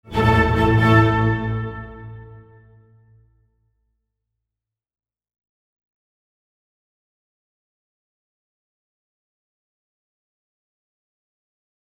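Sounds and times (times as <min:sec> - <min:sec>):
pure space orchestral cadence: 0:00.1 - 0:02.8.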